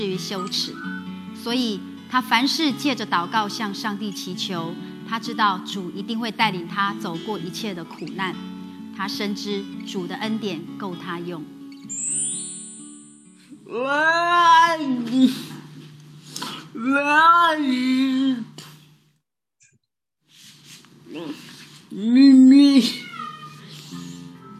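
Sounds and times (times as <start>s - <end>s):
speech: 0.0s - 11.6s, 13.7s - 15.6s, 16.7s - 18.5s, 21.2s - 23.0s
cat meowing: 22.6s - 24.0s.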